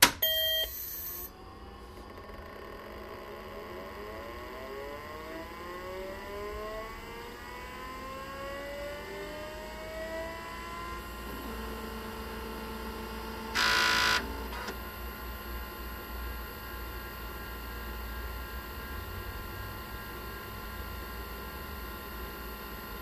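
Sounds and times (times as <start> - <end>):
IBM XT computer fans whirring: 3.2 - 23.0.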